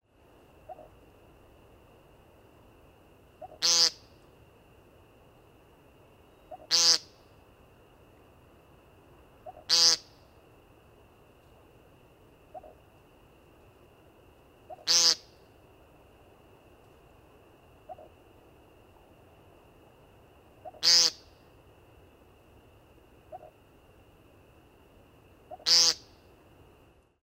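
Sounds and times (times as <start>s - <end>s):
American woodcock peent call: 0.6s - 1.0s, 3.4s - 4.1s, 6.4s - 7.2s, 9.4s - 10.2s, 12.4s - 12.8s, 14.6s - 15.4s, 17.8s - 18.2s, 20.6s - 21.4s, 23.2s - 23.6s, 25.5s - 26.2s.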